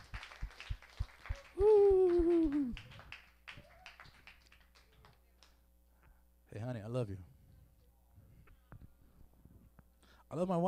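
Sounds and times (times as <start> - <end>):
audience clapping hands in a steady rhythm: 0.0 - 5.6
speech: 7.0 - 7.4, 10.3 - 10.6.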